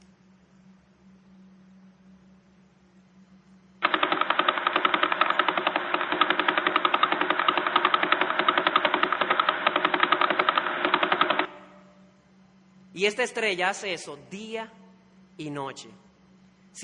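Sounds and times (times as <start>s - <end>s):
sonified Vela pulsar signal of rapid buzzing pulses: 3.7s - 13.3s
speech: 13.0s - 14.8s, 15.4s - 16.0s.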